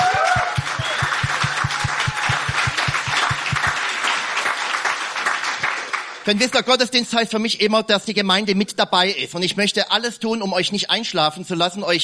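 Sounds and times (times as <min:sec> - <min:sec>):
audience applauding: 0:00.0 - 0:06.4
steady low rhythmic thump: 0:00.2 - 0:03.8
speech: 0:06.3 - 0:12.0.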